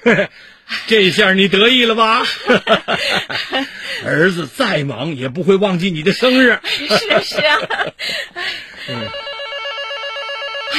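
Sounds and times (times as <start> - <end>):
laughter: 0.0 - 4.4, 6.0 - 9.1
speech: 0.0 - 9.3
telephone ringing: 8.9 - 10.7.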